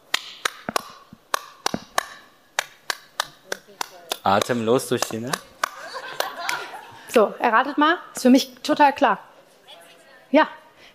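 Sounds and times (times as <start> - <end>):
sharp hand claps in a song-like rhythm: 0.0 - 6.7
speech: 4.2 - 5.5, 7.2 - 9.3, 10.3 - 10.6
laughter: 5.5 - 7.2.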